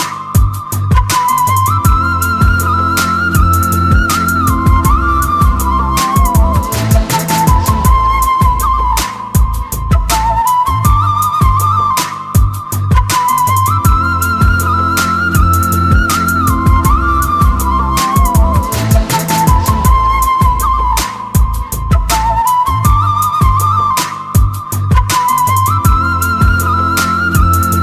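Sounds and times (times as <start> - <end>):
romantic flute ringtone: 0.0 - 27.8.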